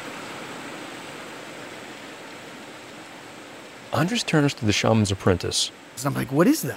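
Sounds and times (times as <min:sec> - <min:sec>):
distant rushing river: 0:00.0 - 0:06.7
speech: 0:03.9 - 0:06.7.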